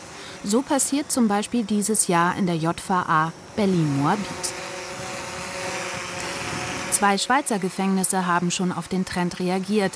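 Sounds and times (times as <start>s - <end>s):
speech: 0.4s - 4.6s, 7.0s - 9.9s
drone hovering with high-pitched motor whine and buzzing propellers: 2.2s - 9.9s.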